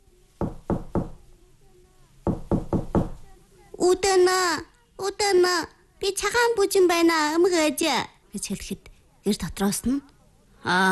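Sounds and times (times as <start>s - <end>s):
knocking on the door of a wooden house: 0.4s - 1.2s, 2.2s - 3.2s
speech: 3.8s - 10.9s.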